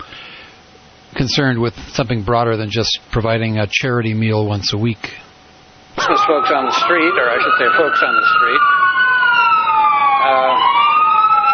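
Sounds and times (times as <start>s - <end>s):
speech: 1.2s - 5.2s, 6.0s - 8.8s, 10.2s - 10.7s
emergency vehicle siren wailing: 6.0s - 11.5s.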